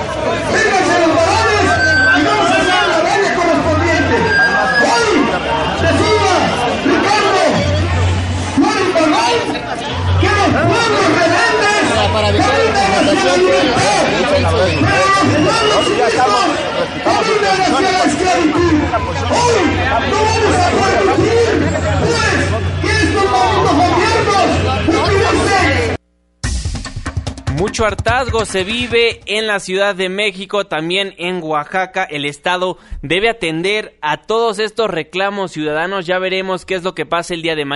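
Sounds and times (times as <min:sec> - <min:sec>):
dense crowd of demonstrators with loud overlapping voices in a street: 0:00.0 - 0:26.0
speech: 0:27.8 - 0:37.7.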